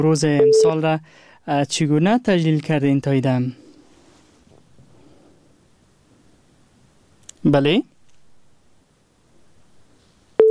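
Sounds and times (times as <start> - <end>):
speech: 0.0 - 3.6, 7.4 - 7.9
steady electronic phone busy tone after a dropped call: 0.4 - 0.8.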